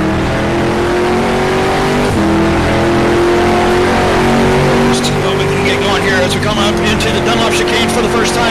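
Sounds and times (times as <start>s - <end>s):
race car engine revving under hard acceleration: 0.0s - 8.5s.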